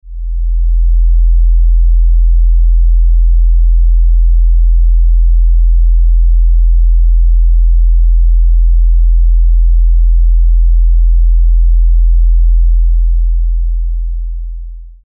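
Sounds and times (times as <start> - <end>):
42 Hz sine wave tone: 0.0 - 15.0.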